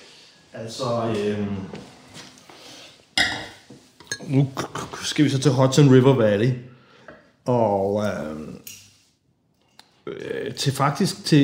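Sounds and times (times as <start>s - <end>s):
speech: 0.5s - 1.9s, 4.3s - 6.7s, 7.4s - 8.6s, 10.1s - 11.4s
burgundy wine glass clinking during a wine tasting: 3.2s - 4.4s.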